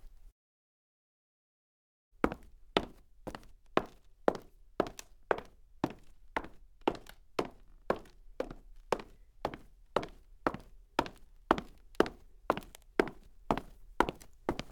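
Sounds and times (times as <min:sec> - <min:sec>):
soft high heel footsteps on wood: 0:02.3 - 0:14.7.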